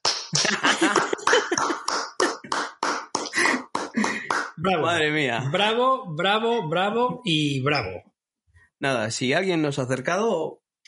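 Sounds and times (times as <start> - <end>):
single person clapping hands: 0.0 - 4.7
laughter: 0.3 - 2.6
speech: 4.6 - 8.1, 8.8 - 10.8.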